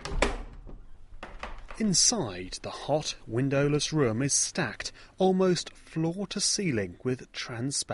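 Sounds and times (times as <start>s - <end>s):
door into a hot windowless snake room thuds and rattling knocks: 0.0s - 1.8s
speech: 1.8s - 7.9s.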